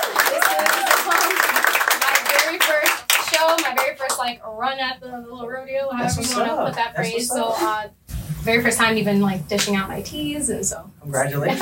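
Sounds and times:
small group clapping hands: 0:00.0 - 0:04.4
speech: 0:04.2 - 0:11.5.

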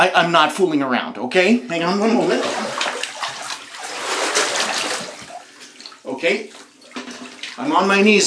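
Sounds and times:
speech: 0:00.0 - 0:02.7, 0:06.2 - 0:06.6, 0:07.6 - 0:08.2
water splashing and sloshing in a bathtub: 0:01.8 - 0:08.2.

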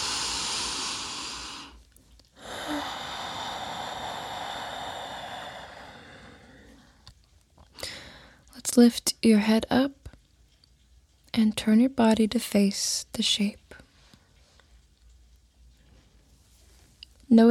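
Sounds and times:
deep breathing during a guided meditation: 0:00.0 - 0:07.1, 0:07.8 - 0:08.5
speech: 0:08.8 - 0:10.0, 0:11.4 - 0:13.6, 0:17.3 - 0:17.5.

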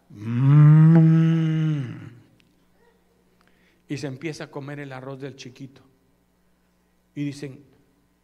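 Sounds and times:
person imitating a cow mooing: 0:00.1 - 0:02.3
speech: 0:03.9 - 0:05.9, 0:07.2 - 0:07.7.

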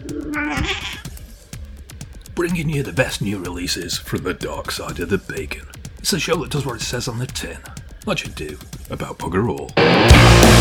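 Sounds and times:
cat meowing: 0:00.0 - 0:01.1
speech: 0:00.4 - 0:00.9, 0:02.4 - 0:10.5
faint clicks and noise: 0:01.9 - 0:02.4.

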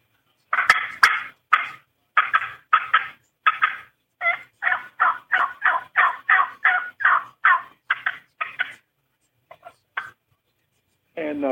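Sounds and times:
turkey call cutting imitating a hen turkey: 0:00.5 - 0:08.9, 0:09.5 - 0:10.2.

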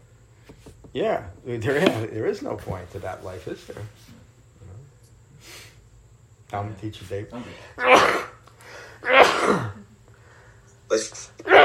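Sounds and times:
speech: 0:01.0 - 0:04.2, 0:06.5 - 0:08.3, 0:09.0 - 0:09.8
person sneezing: 0:07.7 - 0:09.9, 0:10.9 - 0:11.6.

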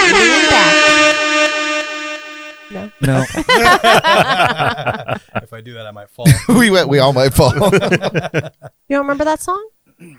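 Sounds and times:
loud blaring air horn blast: 0:00.0 - 0:03.0
laughter: 0:03.0 - 0:08.8
speech: 0:03.0 - 0:10.1.

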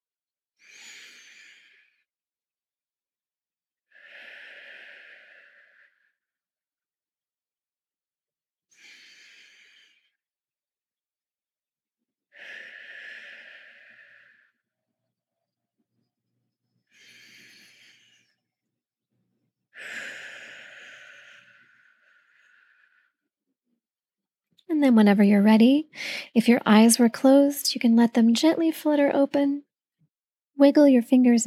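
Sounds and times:
slow deep breathing in through nose and out: 0:00.6 - 0:02.1, 0:03.9 - 0:06.2, 0:08.7 - 0:10.2, 0:12.4 - 0:14.6, 0:16.9 - 0:18.4, 0:19.8 - 0:23.2, 0:25.9 - 0:26.3
speech: 0:24.8 - 0:29.7, 0:30.6 - 0:31.4.

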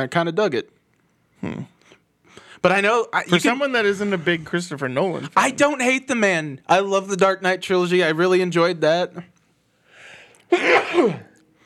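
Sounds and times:
speech: 0:00.0 - 0:00.8, 0:01.4 - 0:01.7, 0:02.6 - 0:09.3, 0:10.5 - 0:11.3
single loud sneeze: 0:10.5 - 0:11.4.

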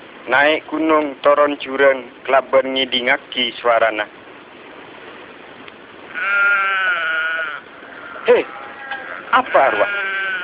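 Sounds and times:
faint hiss: 0:00.0 - 0:10.4
speech: 0:00.2 - 0:04.2, 0:08.3 - 0:08.6, 0:09.4 - 0:10.0
goat bleating: 0:06.1 - 0:10.4.

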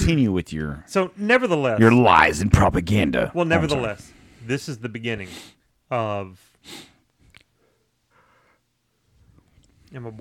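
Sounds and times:
speech: 0:00.0 - 0:06.9, 0:09.9 - 0:10.1
person sniffling: 0:05.2 - 0:05.6, 0:06.6 - 0:07.0.

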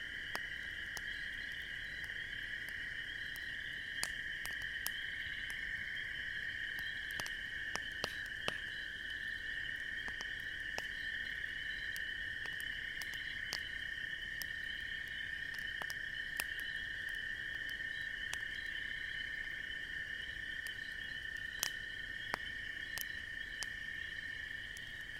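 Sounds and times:
campfire crackling on an autumn evening in the Midwest: 0:00.0 - 0:25.1
chorus of crickets: 0:00.0 - 0:25.1.

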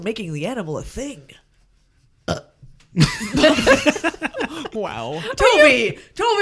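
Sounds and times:
speech: 0:00.0 - 0:01.4, 0:02.3 - 0:06.4
loud drawn-out burp: 0:02.3 - 0:02.6
laughter: 0:03.0 - 0:06.0.

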